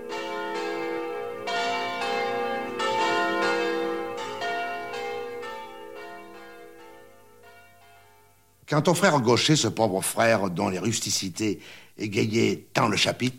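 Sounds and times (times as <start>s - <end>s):
church bells ringing in full peal: 0.0s - 9.6s
speech: 8.7s - 13.3s.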